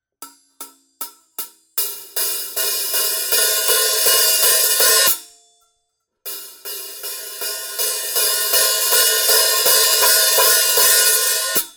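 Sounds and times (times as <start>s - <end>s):
hi-hat cymbal going from closed to open: 2.4s - 5.2s, 6.3s - 11.7s.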